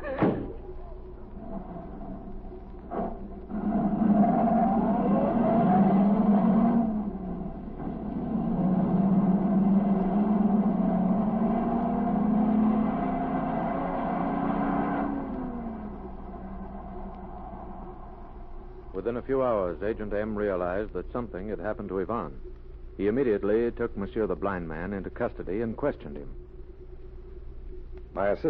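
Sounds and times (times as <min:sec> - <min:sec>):
car engine starting and driving off: 0:00.9 - 0:19.1
speech: 0:19.1 - 0:26.4, 0:28.1 - 0:28.4.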